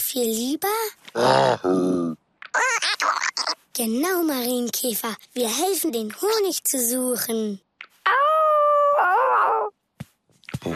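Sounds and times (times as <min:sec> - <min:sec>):
speech: 0:00.1 - 0:03.2, 0:03.8 - 0:08.3
dog howling: 0:08.1 - 0:09.7.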